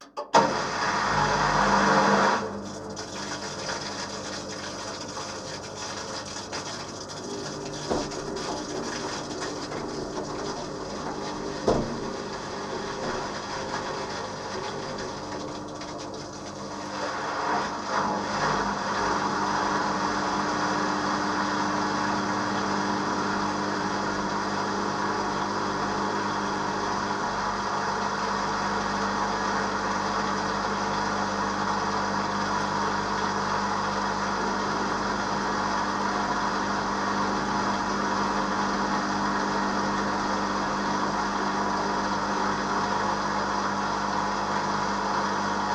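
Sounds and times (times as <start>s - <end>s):
washing machine wash spin cycle: 0.0s - 45.7s.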